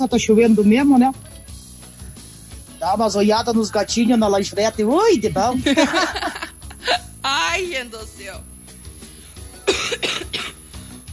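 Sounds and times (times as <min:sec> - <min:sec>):
speech: 0:00.0 - 0:01.3, 0:02.8 - 0:08.5
laughter: 0:05.0 - 0:07.2
harsh raspy coughs from a person with a lingering cough: 0:09.6 - 0:10.8.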